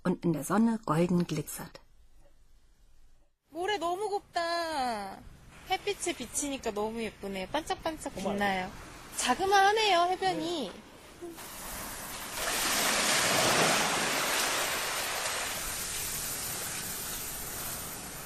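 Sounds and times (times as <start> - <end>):
speech: 0.0 - 1.8, 3.8 - 11.6
waves breaking on the fine sandy shore of a beach: 11.4 - 18.2.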